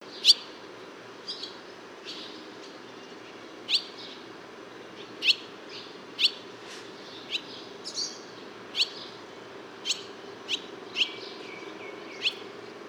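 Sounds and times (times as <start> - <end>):
Hirundo rustica barn swallow calling: 1.3 - 4.2, 5.0 - 9.2, 9.8 - 12.6.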